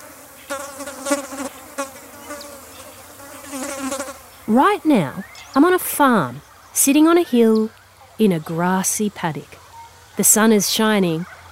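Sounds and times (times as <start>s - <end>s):
flies buzzing on a farm in a grassy paddock on a hill: 0.0s - 5.8s
speech: 4.5s - 9.6s, 10.2s - 11.4s.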